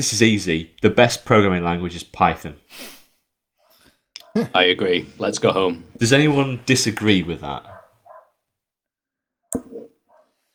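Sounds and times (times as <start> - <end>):
speech: 0.0 - 3.0, 4.4 - 7.7
West Highland terrier yipping: 7.7 - 8.3
West Highland terrier barking: 7.7 - 8.4.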